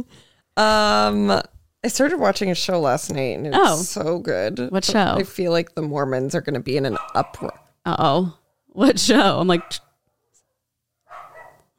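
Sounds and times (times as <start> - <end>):
speech: 0.0 - 9.9
neighbor dogs barking: 6.9 - 7.7, 9.5 - 9.8, 11.0 - 11.7.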